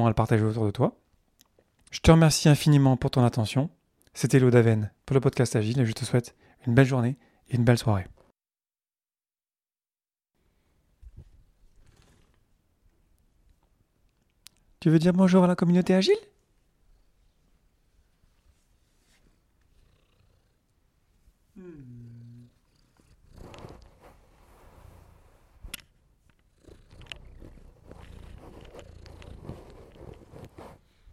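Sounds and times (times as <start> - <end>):
speech: 0.0 - 1.0, 1.9 - 8.2, 14.8 - 16.3
cat purring against the microphone: 11.6 - 12.6, 19.2 - 25.7, 26.3 - 31.0
rustling bumps of cat rubbing against the microphone: 27.8 - 30.9.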